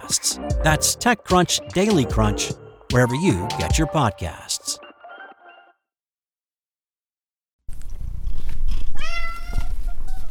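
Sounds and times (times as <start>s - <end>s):
speech: 0.1s - 4.8s
domestic male cat meowing: 9.0s - 9.8s.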